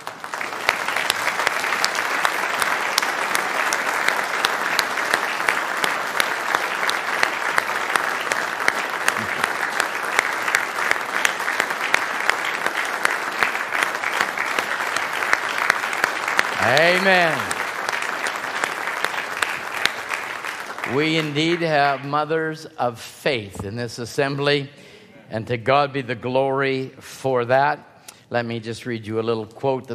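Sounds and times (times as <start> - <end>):
audience applauding in a large room: 0.0 - 22.5
speech: 16.9 - 17.5, 21.0 - 29.9.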